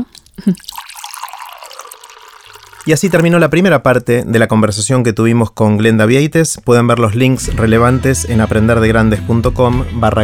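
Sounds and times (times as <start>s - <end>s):
person drinking a little water: 0.0s - 3.3s
light wet trickling of water: 0.0s - 4.1s
speech: 0.4s - 0.8s, 2.9s - 10.2s.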